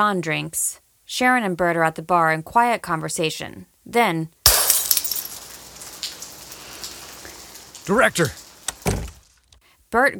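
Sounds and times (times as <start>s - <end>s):
speech: 0.0s - 4.4s, 7.9s - 8.4s, 9.9s - 10.1s
bright clink: 4.5s - 6.2s
glass window shards tinkling: 4.5s - 9.4s
glass window breaking: 4.5s - 9.5s.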